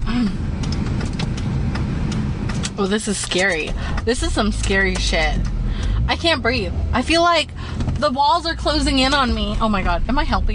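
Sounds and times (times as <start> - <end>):
car engine rumbling: 0.0 - 10.5
sharp clicks and knocks: 0.5 - 6.0
speech: 2.8 - 10.5.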